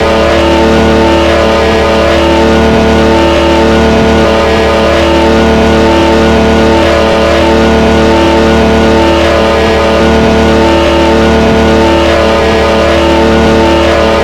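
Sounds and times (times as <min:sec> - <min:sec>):
V12 petrol engine running at medium speed: 0:00.0 - 0:14.2.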